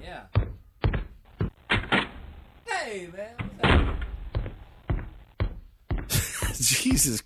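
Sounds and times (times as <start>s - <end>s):
heavy thudding footsteps: 0.4s - 1.9s, 3.9s - 7.1s
speech: 2.9s - 3.8s, 6.6s - 7.2s.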